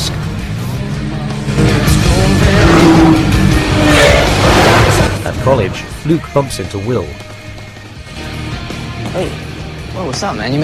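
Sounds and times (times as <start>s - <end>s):
Porsche, Lamborghini, Chevrolet and BMW supercar engines driving in convoy at dusk: 0.0s - 6.0s
speech: 5.5s - 7.3s, 9.2s - 9.4s, 10.0s - 10.6s.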